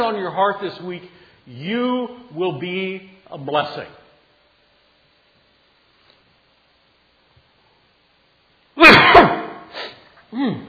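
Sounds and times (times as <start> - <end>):
speech: 0.0 - 4.0, 10.3 - 10.6
person sneezing: 8.8 - 10.6.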